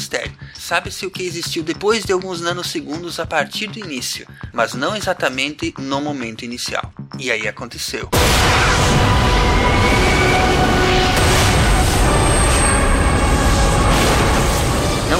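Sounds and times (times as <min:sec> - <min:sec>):
speech: 0:00.1 - 0:10.8
rumbling explosion: 0:08.1 - 0:15.1.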